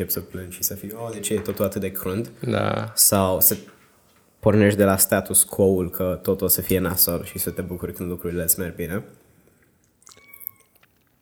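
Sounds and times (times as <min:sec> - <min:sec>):
speech: 0:00.0 - 0:03.8, 0:04.4 - 0:09.2
cat meowing: 0:07.0 - 0:08.0, 0:10.0 - 0:10.9.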